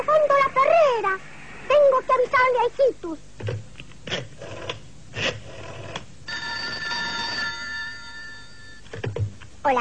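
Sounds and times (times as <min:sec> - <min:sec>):
speech: 0:01.0 - 0:03.5, 0:04.1 - 0:04.4
telephone ringing with a high electronic ringing tone: 0:05.6 - 0:09.1.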